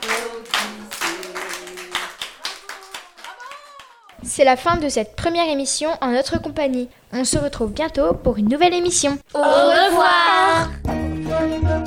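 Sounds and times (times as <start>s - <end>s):
voices singing or chanting along: 0.0s - 4.0s, 9.3s - 11.8s
audience clapping rhythmically at the close of a children's show: 0.0s - 4.2s
speech: 4.2s - 10.7s.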